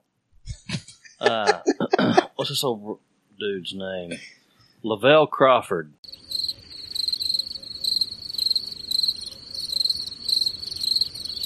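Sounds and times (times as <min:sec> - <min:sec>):
laughter: 0:00.5 - 0:02.9
speech: 0:01.2 - 0:06.1
crickets chirping: 0:06.0 - 0:11.4.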